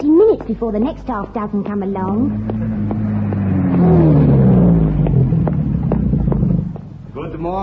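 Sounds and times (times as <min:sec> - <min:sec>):
speech: 0:00.5 - 0:02.7, 0:07.4 - 0:07.6
low rumble: 0:01.4 - 0:07.4
car engine revving as it pulls up in the rain: 0:01.4 - 0:07.6.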